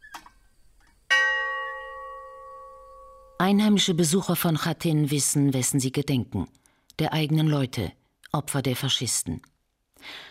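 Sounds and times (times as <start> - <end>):
memorial bell atop a brick chimney in a village war memorial clanging: 1.1 - 3.4
speech: 3.4 - 10.2.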